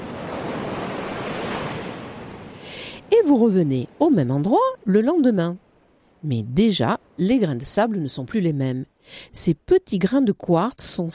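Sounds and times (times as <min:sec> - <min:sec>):
Atlantic Ocean surf breaking on a white sand beach: 0:00.0 - 0:03.6
wind: 0:00.0 - 0:11.1
speech: 0:03.2 - 0:05.6, 0:06.2 - 0:11.1.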